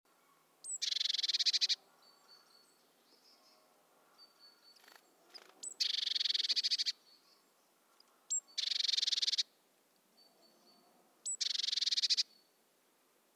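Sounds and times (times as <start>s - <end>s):
Eurasian blue tit Cyanistes caeruleus buzzy calls: 0.6s - 1.8s, 4.8s - 7.0s, 8.3s - 9.5s, 11.2s - 12.4s.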